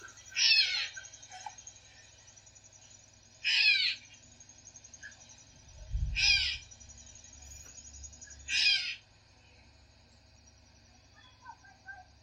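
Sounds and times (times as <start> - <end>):
Gray Catbird calling: 0.0 - 1.4, 3.4 - 4.2, 6.0 - 6.8, 8.3 - 9.0.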